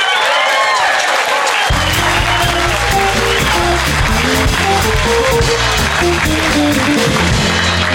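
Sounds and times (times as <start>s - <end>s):
large audience applauding and cheering: 0.0s - 7.9s
band playing music: 1.7s - 7.9s.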